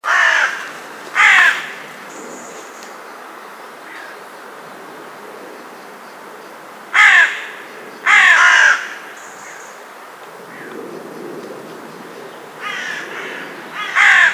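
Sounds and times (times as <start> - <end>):
carrion crow cawing: 0.0 - 1.9, 6.9 - 9.1, 12.6 - 14.3.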